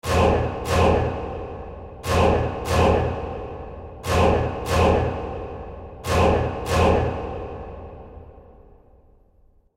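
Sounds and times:
scary orchestral horror music: 0.0s - 8.4s
horror trailer impact hit: 0.0s - 8.7s.

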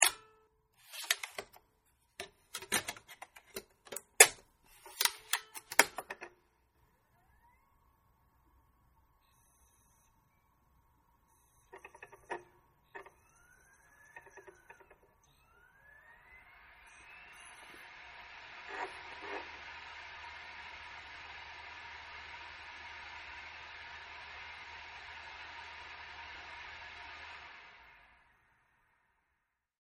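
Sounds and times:
laptop DVD drive reading disc media: 0.0s - 1.6s, 2.2s - 6.3s, 11.3s - 27.6s.

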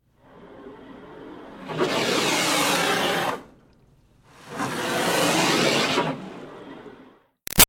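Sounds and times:
water spraying on a car interior grill at a car wash: 0.2s - 7.1s.

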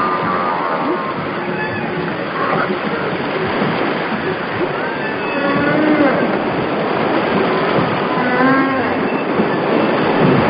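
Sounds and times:
humpback whale moans: 0.0s - 3.6s, 4.6s - 10.3s.

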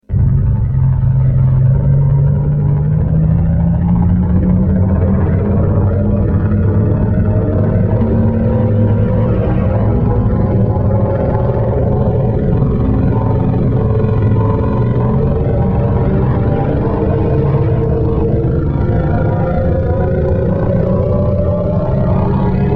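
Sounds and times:
ascending spaceship taking off: 0.0s - 22.7s.

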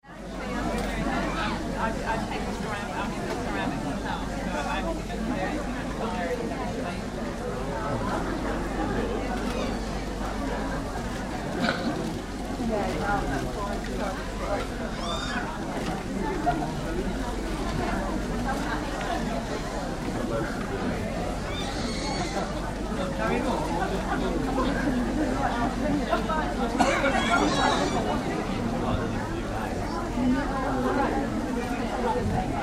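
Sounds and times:
large busy craft market crowd indoors: 0.0s - 32.6s.

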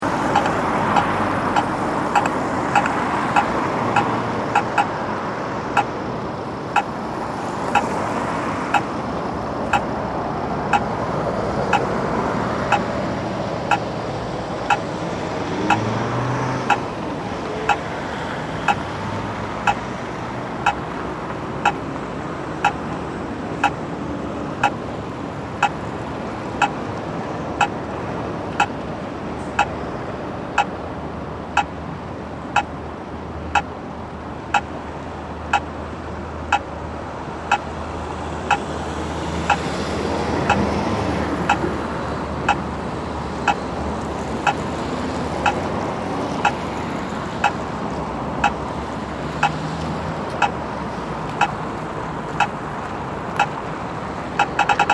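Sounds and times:
two types of traffic crossing signals in Sweden: 0.0s - 12.0s, 12.6s - 13.0s, 13.6s - 16.0s, 16.6s - 18.9s, 19.6s - 19.9s, 20.5s - 21.0s, 21.6s - 21.9s, 22.6s - 23.0s, 23.6s - 23.8s, 24.5s - 24.9s, 25.5s - 30.8s, 31.5s - 31.8s, 32.5s - 32.8s, 33.5s - 33.7s, 34.5s - 34.7s, 35.4s - 35.7s, 36.5s - 36.8s, 37.4s - 38.7s, 39.4s - 39.8s, 40.4s - 40.7s, 41.4s - 41.7s, 42.4s - 42.7s, 43.3s - 43.8s, 44.4s - 54.9s
heavy traffic passing by in background: 0.0s - 54.9s.

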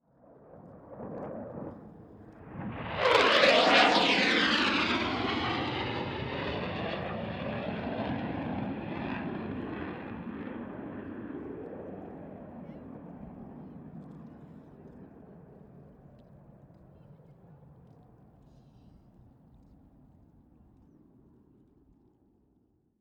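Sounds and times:
jet fighter flyby: 0.2s - 15.9s.

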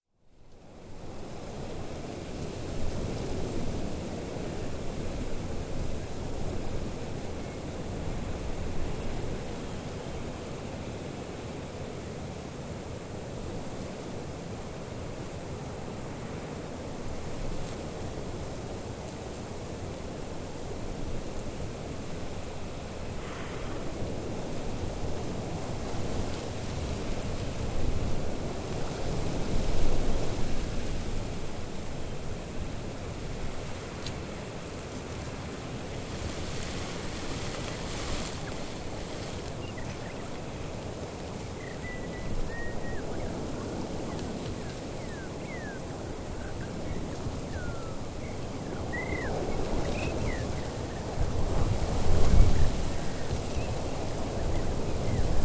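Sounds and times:
wind gusts on an open hilltop: 0.2s - 55.4s
birds: 37.6s - 51.2s.

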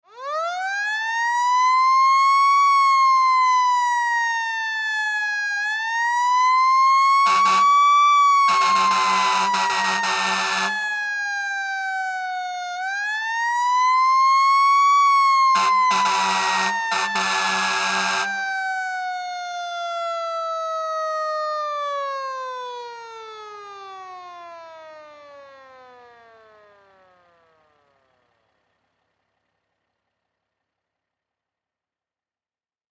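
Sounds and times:
fire truck siren winding out: 0.0s - 29.2s
fire truck horn honking: 7.1s - 10.9s, 15.4s - 18.4s.

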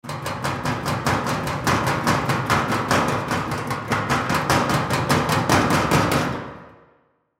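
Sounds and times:
metal locker impacts: 0.0s - 6.7s.

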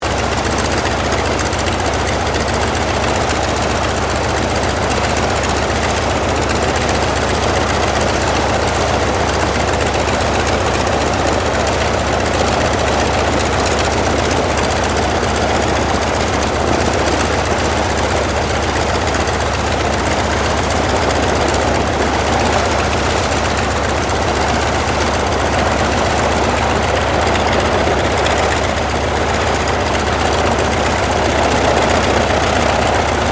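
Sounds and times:
CAC Wirraway aircraft engine idling: 0.0s - 33.3s.

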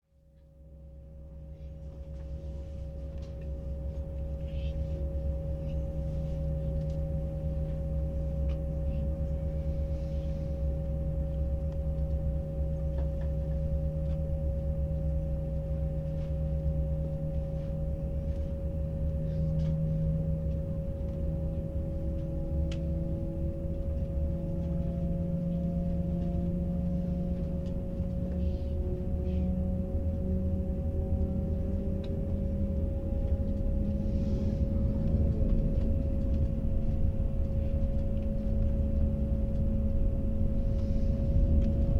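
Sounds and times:
Airbus 319 or 320 aircraft interior during take off and flight: 0.3s - 41.9s.

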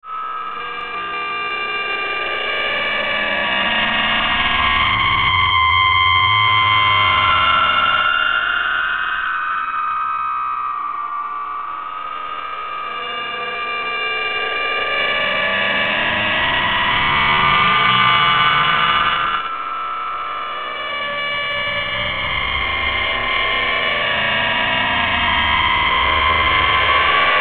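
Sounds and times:
strange edgy oscillating feedback drone: 0.0s - 27.3s.

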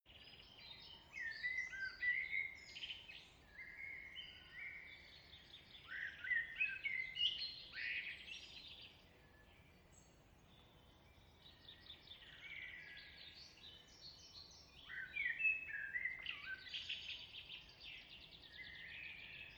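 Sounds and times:
songbirds singing in evening UK countryside woodland: 0.1s - 19.5s.

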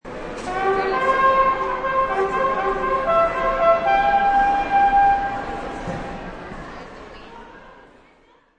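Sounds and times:
crowd noise: 0.0s - 8.5s
bugle playing: 0.5s - 5.7s.

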